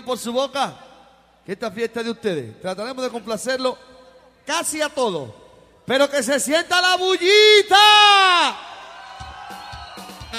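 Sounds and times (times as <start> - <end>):
speech: 0.0 - 8.7
muddled background of crowd noise: 7.8 - 10.3
high-pitched scream or whoop from the crowd at a live music party: 8.1 - 10.3.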